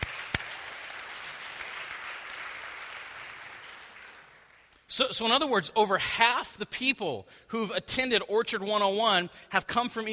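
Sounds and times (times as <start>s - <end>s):
audience applause: 0.0s - 4.7s
speech: 4.9s - 10.1s.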